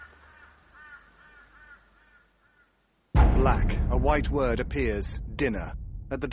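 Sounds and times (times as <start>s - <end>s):
flock of crows cawing as it takes flight: 0.0s - 2.9s
low outdoor rumble: 3.2s - 6.3s
speech: 3.4s - 6.3s.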